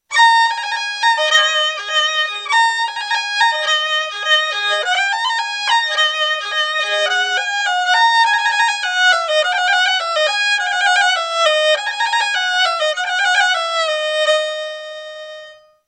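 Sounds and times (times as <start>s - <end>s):
kamanche: 0.0s - 15.8s.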